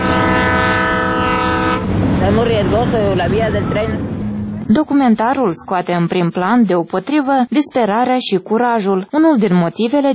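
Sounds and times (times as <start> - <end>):
train horn: 0.0 - 1.9
rumbling rail noise: 0.0 - 7.2
speech: 2.3 - 10.1.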